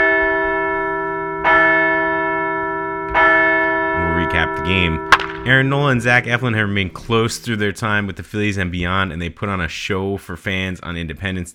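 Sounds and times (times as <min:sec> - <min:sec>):
large bell ringing for a win: 0:00.0 - 0:07.2
speech: 0:04.5 - 0:11.5.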